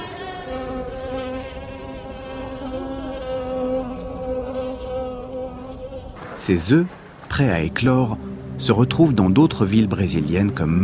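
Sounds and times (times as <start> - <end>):
mosquito buzzing: 0.0 - 6.2
speech: 6.4 - 10.8.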